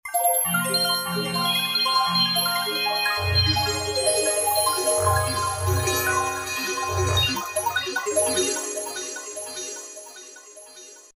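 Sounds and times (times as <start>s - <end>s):
Roland V-Synth synthesizer bells factory patch: 0.1s - 11.1s.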